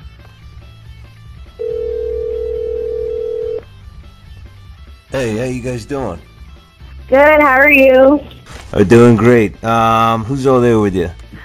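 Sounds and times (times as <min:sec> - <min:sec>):
telephone line ringing tone as a call is placed: 0:01.6 - 0:03.6
speech: 0:05.1 - 0:06.3, 0:07.1 - 0:11.2.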